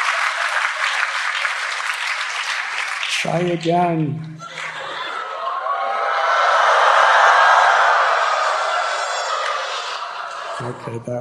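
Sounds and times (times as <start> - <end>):
laughter: 0.0 - 1.8, 4.2 - 11.2
speech: 3.2 - 4.4, 10.8 - 11.2
crowd screeching imitating screaming elephants: 4.4 - 11.1.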